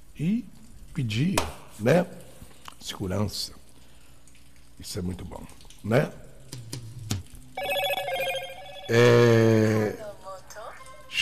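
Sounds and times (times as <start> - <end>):
speech: 0.2 - 2.2, 2.8 - 3.6, 4.8 - 6.8, 8.9 - 10.0
telephone ringtone for an incoming call: 7.6 - 9.5.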